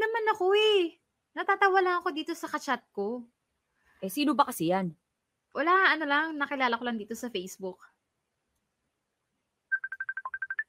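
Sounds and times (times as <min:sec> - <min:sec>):
speech: 0:00.4 - 0:03.4, 0:04.0 - 0:07.9
mobile phone ringtone for an incoming call: 0:09.7 - 0:10.6.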